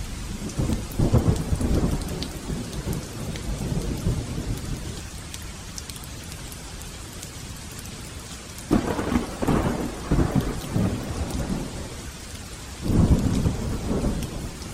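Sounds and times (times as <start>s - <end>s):
violent heavy rainstorm: 0.0s - 14.7s
deep rumbling thunder: 0.4s - 4.8s, 8.7s - 12.0s, 12.8s - 14.7s.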